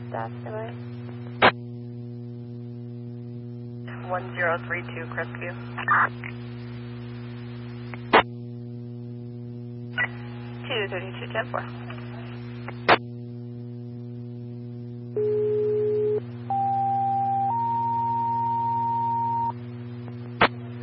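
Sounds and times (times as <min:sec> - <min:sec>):
radio static: 0:00.0 - 0:01.6, 0:03.9 - 0:08.3, 0:10.0 - 0:13.0
constant low hum: 0:00.0 - 0:20.8
speech: 0:00.1 - 0:01.2, 0:04.1 - 0:06.4, 0:10.9 - 0:11.8
garbled radio chatter: 0:03.9 - 0:06.4, 0:10.0 - 0:12.4
fire department dispatch electronic alert tones stepping upward in pitch: 0:15.2 - 0:19.5.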